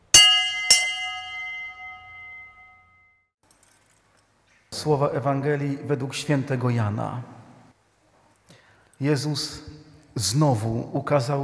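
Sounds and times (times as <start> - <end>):
church bell struck: 0.0 - 3.1
speech: 4.8 - 7.4, 9.0 - 11.4.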